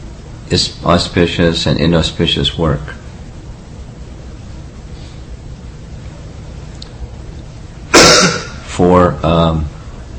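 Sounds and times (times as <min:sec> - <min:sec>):
speech: 0:00.5 - 0:03.0
single loud harsh cough: 0:07.9 - 0:08.6
strained throaty clearing of the throat: 0:07.9 - 0:08.6.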